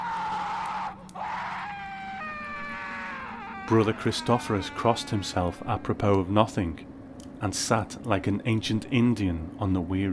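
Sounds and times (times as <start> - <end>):
loud piercing shriek echoing off hard stone walls: 0.0 - 6.1
speech: 3.7 - 10.1.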